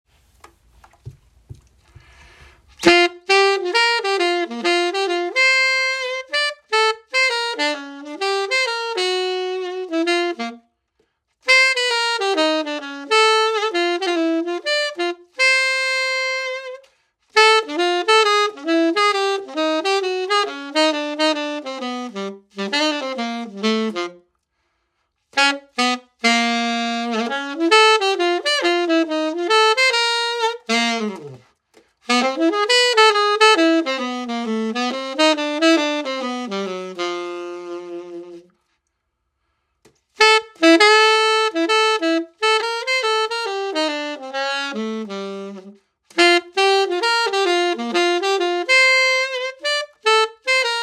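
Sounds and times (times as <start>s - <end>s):
jazz tenor saxophone: 0.5s - 50.8s.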